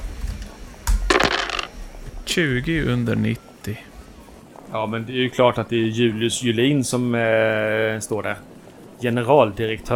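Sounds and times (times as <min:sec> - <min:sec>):
die dropping onto a surface and tumbling: 0:01.1 - 0:01.7
speech: 0:02.3 - 0:03.9, 0:04.7 - 0:09.9.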